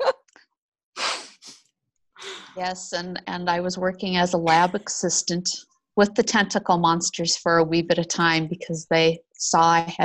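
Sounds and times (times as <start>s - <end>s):
loud sneeze caused by dust in a tunnel: 1.0s - 1.6s
person catching breath: 1.0s - 1.6s, 2.2s - 2.6s
speech: 2.6s - 10.0s.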